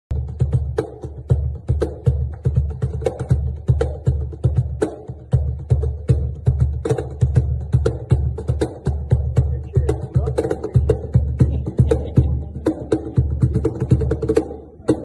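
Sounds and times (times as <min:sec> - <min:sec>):
cajon: 0:00.1 - 0:15.0
laughter: 0:10.2 - 0:13.4.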